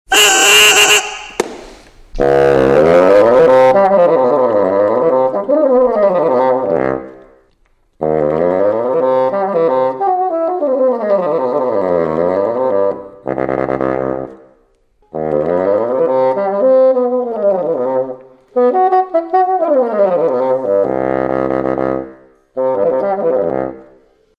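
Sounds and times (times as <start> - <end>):
bassoon: 0.1 - 1.4, 2.1 - 7.3, 8.0 - 14.4, 15.0 - 24.2.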